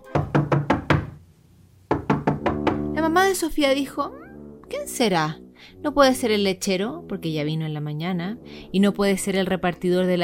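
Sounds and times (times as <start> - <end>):
sharp knocking on a door: 0.0 - 1.2, 1.9 - 3.0
speech: 3.1 - 10.2.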